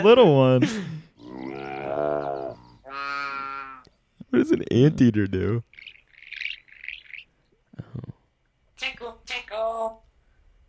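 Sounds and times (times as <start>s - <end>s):
speech: 0.0s - 1.0s, 4.3s - 5.9s
African grey parrot calling quietly: 1.3s - 3.9s, 5.7s - 7.4s.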